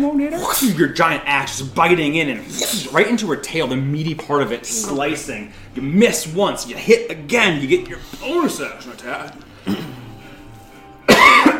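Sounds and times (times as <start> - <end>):
speech: 0.2 - 9.9
voice imitating a creature's raspy cough: 9.6 - 10.1, 11.1 - 11.5.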